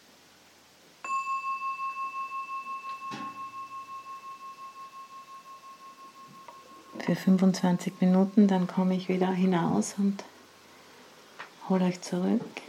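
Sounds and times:
meditation bell ringing: 0:01.0 - 0:10.7
speech: 0:07.1 - 0:10.3, 0:11.7 - 0:12.6.

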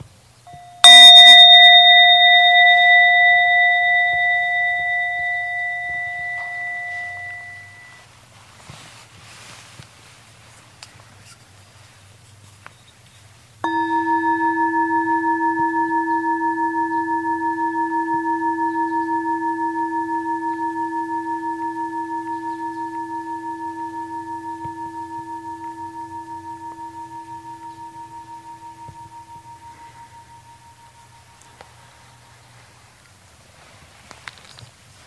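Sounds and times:
meditation bell struck and ringing with a clear shimmering tone: 0:00.5 - 0:08.0, 0:13.6 - 0:32.6.

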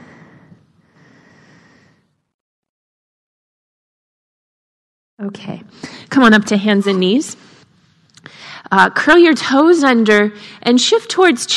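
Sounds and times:
deep full breath drawn in and let out: 0:00.0 - 0:02.3, 0:07.5 - 0:08.7
speech: 0:05.2 - 0:07.5, 0:08.6 - 0:11.5.

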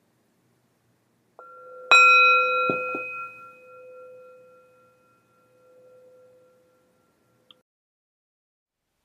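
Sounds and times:
meditation bell struck and ringing: 0:01.4 - 0:07.5.

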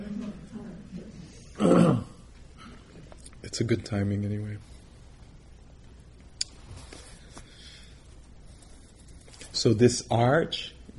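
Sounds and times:
throat clearing: 0:01.6 - 0:02.9
speech: 0:03.6 - 0:04.7, 0:09.6 - 0:10.9.

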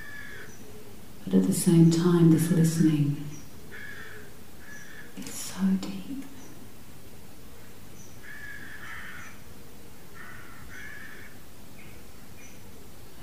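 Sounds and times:
crows cawing outside: 0:00.0 - 0:00.6, 0:03.7 - 0:05.2, 0:08.2 - 0:09.4, 0:10.1 - 0:11.4
steady hiss: 0:00.0 - 0:13.2
speech: 0:01.2 - 0:03.4.

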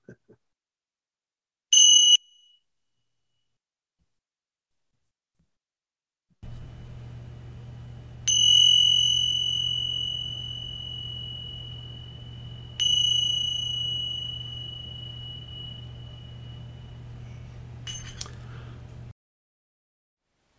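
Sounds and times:
steady low hum: 0:06.4 - 0:19.1
small meditation bell struck: 0:07.7 - 0:18.7.

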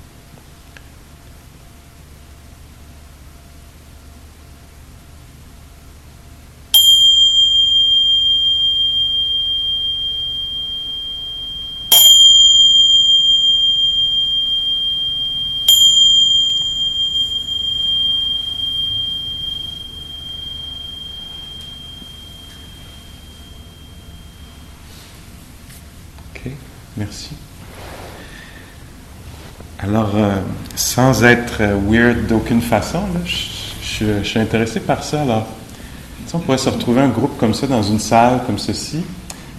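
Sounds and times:
meditation bell ringing: 0:06.7 - 0:25.6, 0:30.8 - 0:38.7
speech: 0:26.4 - 0:27.4, 0:29.8 - 0:35.6, 0:36.3 - 0:39.2.

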